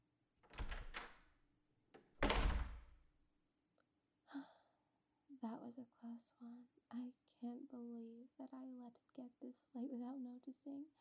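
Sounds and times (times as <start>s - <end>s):
door shutting with solid bumps: 0.5s - 1.2s, 2.0s - 3.0s
speech: 5.4s - 11.0s.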